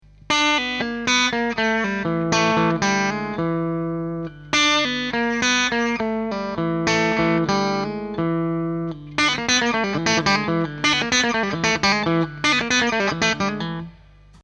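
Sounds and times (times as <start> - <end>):
bluesy lick: 0.2 - 14.0.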